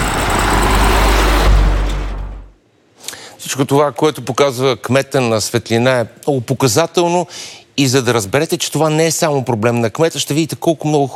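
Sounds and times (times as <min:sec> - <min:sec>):
vehicle passing on a road with engine and tire noise: 0:00.0 - 0:02.6
speech: 0:03.5 - 0:11.1.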